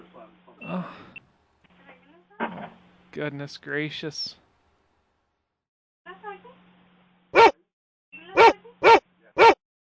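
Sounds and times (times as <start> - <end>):
speech: 3.2 - 4.4
dogs barking: 7.4 - 7.6, 8.4 - 9.9
dogs whining and yelping: 7.4 - 7.6, 8.4 - 9.6.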